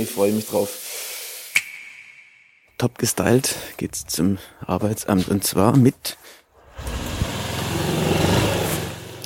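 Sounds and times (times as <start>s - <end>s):
speech: 0.0s - 0.9s, 2.8s - 6.2s
small motor scooter engine starting up and running: 6.8s - 9.2s.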